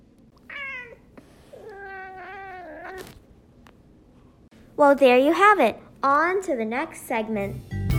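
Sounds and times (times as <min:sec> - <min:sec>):
domestic cat meowing: 0:00.4 - 0:03.2
speech: 0:04.8 - 0:07.8.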